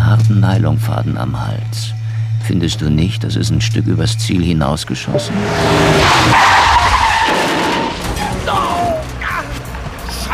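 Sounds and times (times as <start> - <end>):
speech: 0.4 - 6.6
car skidding: 5.0 - 9.2
tire squeal: 5.0 - 9.2.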